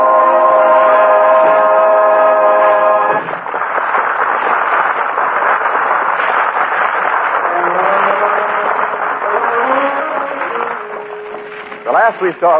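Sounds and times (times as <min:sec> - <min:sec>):
railroad train horn-like blasts: 0:00.0 - 0:03.3, 0:07.4 - 0:12.5
railroad train packed with passengers and baggage rumbling along: 0:00.0 - 0:06.3, 0:07.2 - 0:12.5
speech: 0:12.2 - 0:12.5.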